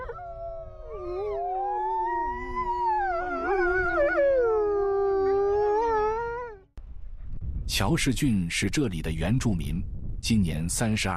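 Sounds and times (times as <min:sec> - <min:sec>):
several wolves howling together in an overlapping chorus: 0:00.0 - 0:06.7
speech: 0:07.8 - 0:11.1.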